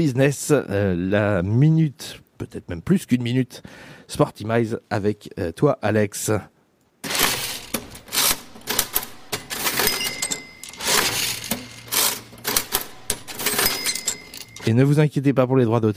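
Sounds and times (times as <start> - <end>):
speech: 0.0 - 6.5, 14.6 - 15.9
cash register with rapid mechanical key strikes and rattling: 7.0 - 14.7.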